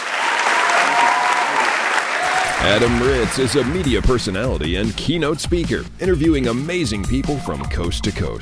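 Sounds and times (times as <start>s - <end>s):
crowd applauding student athletes: 0.0s - 4.5s
speech: 2.6s - 8.4s.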